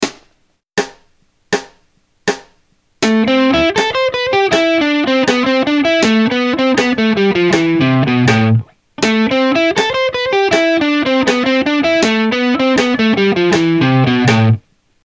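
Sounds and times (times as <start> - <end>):
rock guitar playing triplets and quadruplets as a solo rhythm exercise: 3.0 - 14.6.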